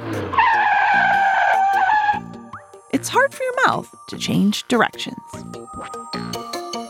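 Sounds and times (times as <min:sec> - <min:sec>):
car tires screeching in a fast turn: 0:00.0 - 0:02.3
speech: 0:03.0 - 0:06.2.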